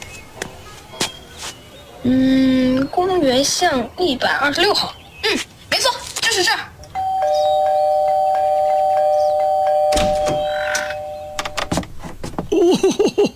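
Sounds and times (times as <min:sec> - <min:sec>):
speech: 0:02.0 - 0:05.5, 0:06.4 - 0:06.7
electronic doorbell pressed by a child chiming: 0:06.9 - 0:11.8
laughter: 0:12.5 - 0:13.3.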